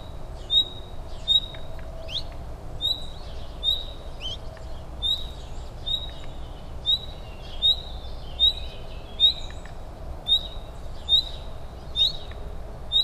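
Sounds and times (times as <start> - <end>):
Common nightingale Luscinia megarhynchos uttering short upward-flicking whistled calls: 0.0 - 13.0
steady low-pitched background noise: 0.0 - 13.0
soft ticks: 9.5 - 9.8.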